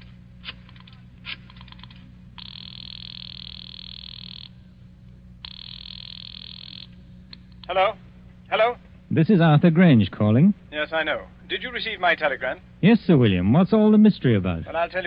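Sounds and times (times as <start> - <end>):
low constant hum on the telephone line: 0.0 - 15.0
phone line clicks: 0.4 - 7.8
telephone ringing on the line heard through the receiver: 2.4 - 4.6, 5.4 - 7.0
speech: 7.7 - 15.0.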